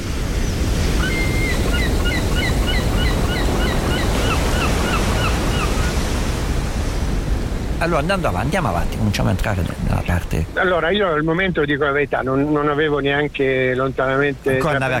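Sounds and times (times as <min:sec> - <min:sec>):
sea waves rushing heard from a ship's deck: 0:00.0 - 0:10.9, 0:14.2 - 0:14.9
short chirping bird calls: 0:00.5 - 0:06.0
speech: 0:07.8 - 0:14.9.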